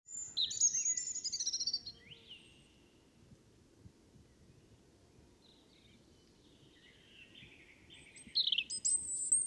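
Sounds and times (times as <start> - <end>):
European robin Erithacus rubecula singing high tinkling varied phrases: 0.1 - 2.6, 6.8 - 9.4.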